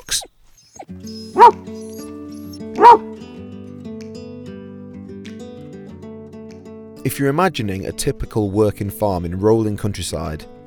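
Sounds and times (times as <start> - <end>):
speech: 1.1 - 2.0, 2.8 - 3.1, 7.0 - 10.6
farm dog barking: 1.3 - 1.7, 2.8 - 3.2.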